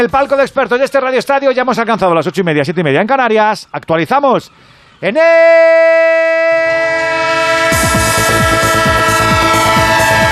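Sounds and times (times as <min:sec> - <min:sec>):
speech: 0:00.0 - 0:06.6
sustained multi-tone train horn sound effect: 0:06.3 - 0:10.3.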